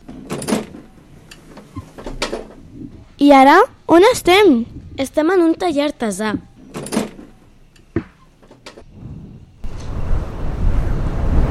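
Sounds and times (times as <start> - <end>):
window banging open with knocks and rattle: 0.0 - 2.6, 6.6 - 7.4
rush of wind pouring in through window: 2.5 - 5.2, 8.8 - 11.4
speech: 3.2 - 6.5.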